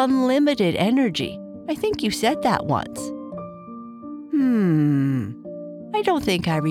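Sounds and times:
speech: 0.0s - 3.2s, 4.5s - 6.6s
long voiced yawn: 4.3s - 5.4s.

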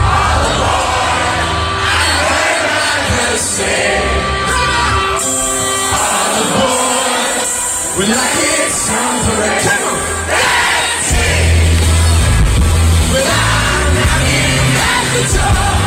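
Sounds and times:
dense concert crowd roaring and cheering: 0.0s - 15.8s
live band playing at a concert: 0.0s - 15.8s.

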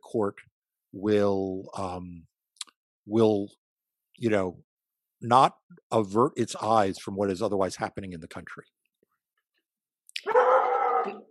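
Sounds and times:
speech: 0.1s - 2.3s, 3.1s - 3.6s, 4.2s - 8.8s, 11.0s - 11.2s
dog barking: 10.2s - 11.2s.

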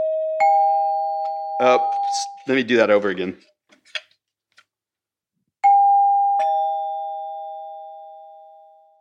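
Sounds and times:
electric doorbell two-note ding-dong chime: 0.0s - 2.1s, 5.6s - 8.9s
speech: 1.6s - 3.5s.

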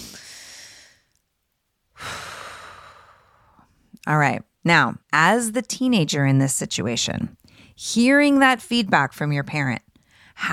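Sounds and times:
person taking a deep breath: 0.0s - 1.2s, 2.0s - 3.7s
speech: 4.0s - 10.5s.

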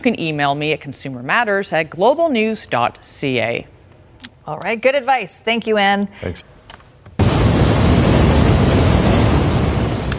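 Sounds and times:
speech: 0.0s - 3.8s, 4.5s - 6.6s
snow avalanche crashing down a mountain in southern Switzerland after heavy snowfall: 7.2s - 10.1s.

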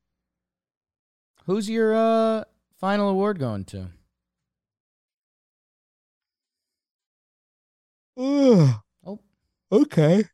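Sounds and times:
speech: 1.5s - 4.0s, 8.2s - 10.3s
long drawn-out human yawn: 8.2s - 8.8s.

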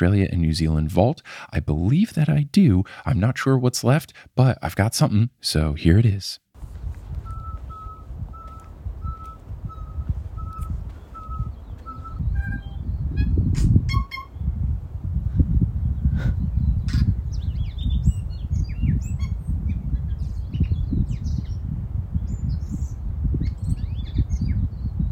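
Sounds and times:
speech: 0.0s - 6.4s
constant low rumble: 6.6s - 25.1s
single bird singing a long varied song: 7.2s - 14.5s, 16.4s - 25.1s.

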